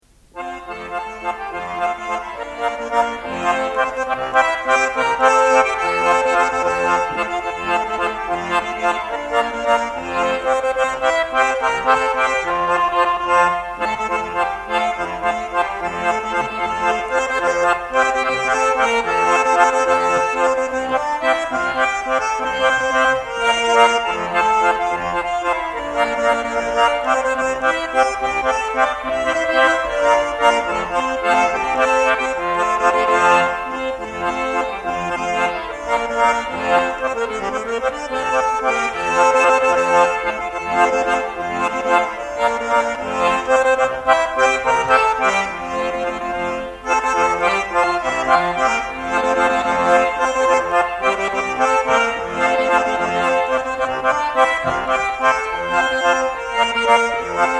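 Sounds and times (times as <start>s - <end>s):
folk music: 0.0s - 57.5s.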